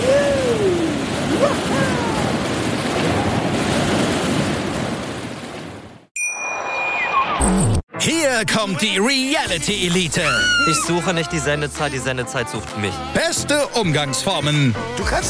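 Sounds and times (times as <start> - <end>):
ocean surf roaring: 0.0 - 6.1
high ringing tones: 6.2 - 7.5
speech: 8.4 - 15.2.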